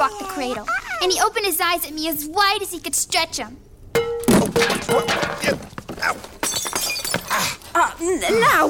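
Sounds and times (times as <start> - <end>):
speech: 0.0 - 3.7, 4.6 - 6.4, 7.4 - 8.6
scattered clattering shards: 4.0 - 5.8, 6.4 - 7.3
water pitcher knocked over and breaking: 4.0 - 7.3.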